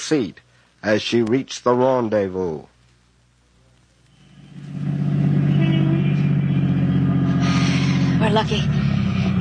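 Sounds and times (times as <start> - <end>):
speech: 0.1 - 2.7, 8.2 - 8.8
car engine running: 4.1 - 9.3.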